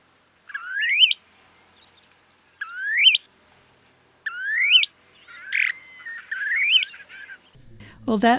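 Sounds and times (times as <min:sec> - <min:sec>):
male snowy plover calling to attract mates: 0:00.5 - 0:01.2, 0:02.6 - 0:03.3, 0:04.3 - 0:07.5.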